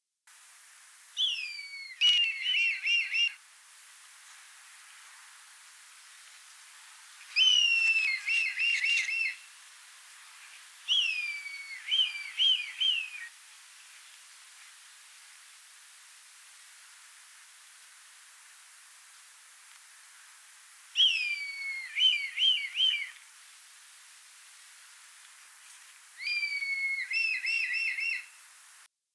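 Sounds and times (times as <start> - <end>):
red kite calling: 1.0 - 13.4, 21.0 - 28.9.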